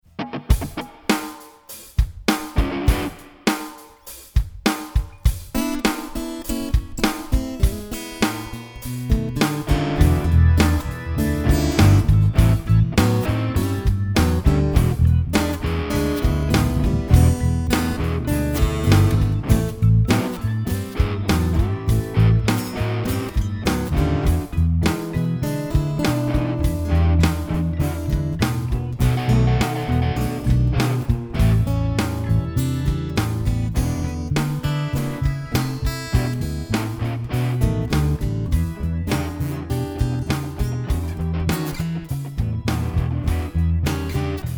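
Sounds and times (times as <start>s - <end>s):
E blues chord progression jam: 0.2s - 4.2s, 5.2s - 44.5s.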